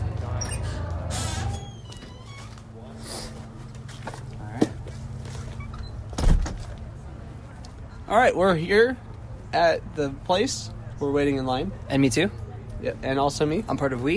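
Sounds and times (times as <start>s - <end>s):
faint murmuring voices: 0.0s - 14.1s
door creaking open with an eerie groaning squeal: 0.4s - 2.7s, 5.5s - 6.6s
speech: 8.1s - 14.1s.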